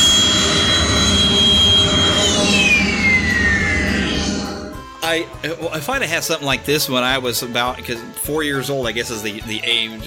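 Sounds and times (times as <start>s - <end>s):
ride-on toy's electronic jet engine shutdown effect: 0.0s - 5.0s
speech: 5.1s - 10.0s.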